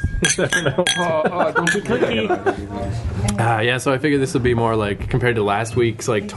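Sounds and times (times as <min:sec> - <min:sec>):
glasses clinking together in a toast: 0:00.0 - 0:02.2
laughter: 0:00.2 - 0:03.0
speech: 0:00.2 - 0:06.3.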